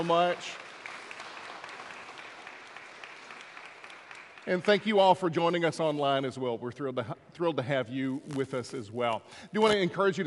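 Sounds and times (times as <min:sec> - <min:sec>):
speech: 0:00.0 - 0:00.7, 0:04.4 - 0:10.2
congregation applauding: 0:00.0 - 0:05.1.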